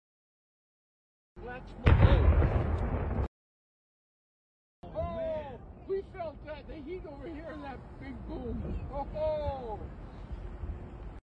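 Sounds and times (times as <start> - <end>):
deep explosion at a refinery: 1.8 - 3.3
speech: 6.6 - 10.0.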